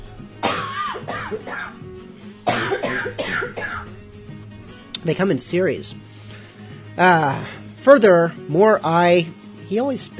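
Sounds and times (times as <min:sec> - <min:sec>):
person in a hacking coughing fit: 0:00.4 - 0:01.7, 0:02.4 - 0:03.9
speech: 0:01.3 - 0:01.9, 0:05.0 - 0:06.1, 0:07.0 - 0:10.1.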